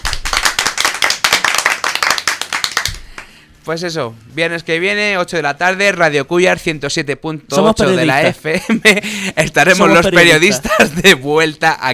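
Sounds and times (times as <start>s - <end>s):
hand clapping and applause at the close of a radio show: 0.0s - 3.4s
speech: 3.7s - 11.9s.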